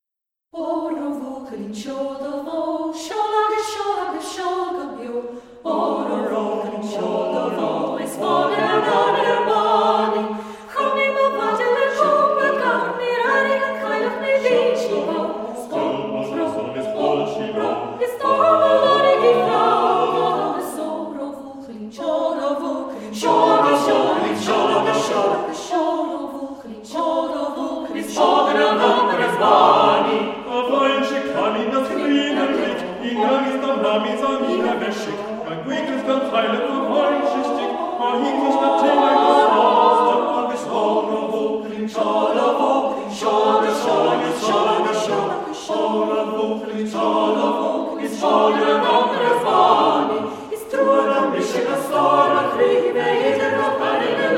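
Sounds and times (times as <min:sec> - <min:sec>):
SATB choir singing: 0:00.6 - 0:54.3.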